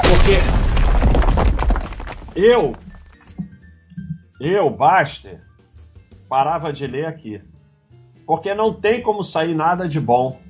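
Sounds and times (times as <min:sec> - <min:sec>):
explosion sound effect: 0:00.0 - 0:03.1
speech: 0:00.1 - 0:00.6, 0:02.4 - 0:02.8, 0:04.4 - 0:05.5, 0:06.3 - 0:07.5, 0:08.3 - 0:10.4.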